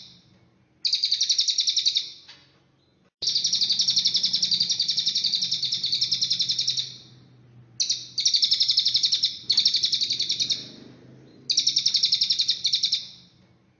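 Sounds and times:
Cililin bird buzzy trill: 0.0s - 2.3s, 3.2s - 13.4s
faint low background hum: 2.3s - 13.7s.

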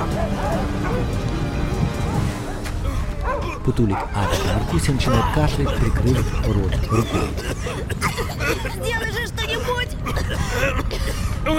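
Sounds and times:
dogs barking and whimpering as they are driven forward during a fire: 0.0s - 6.0s
speech: 3.7s - 11.5s.

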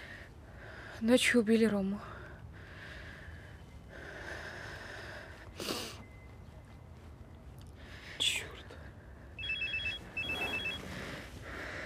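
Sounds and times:
steady low hum: 0.0s - 11.8s
speech: 1.0s - 2.1s
telephone ringing with high electronic trilling: 9.4s - 10.9s.

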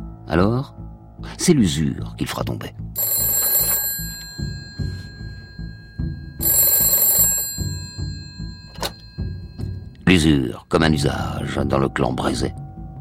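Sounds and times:
speech: 0.3s - 3.1s, 10.2s - 12.6s
telephone bell ringing in a family home: 3.0s - 10.0s.

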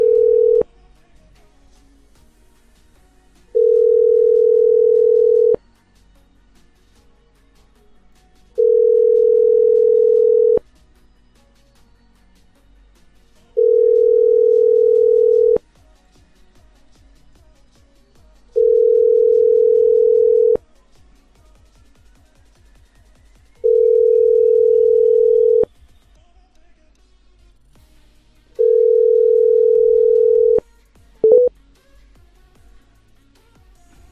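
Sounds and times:
telephone line tone after a number is dialed: 0.0s - 0.7s, 3.6s - 5.6s, 8.6s - 10.6s, 13.6s - 15.6s, 18.6s - 20.6s, 23.6s - 25.7s, 28.6s - 30.6s, 31.2s - 31.5s.

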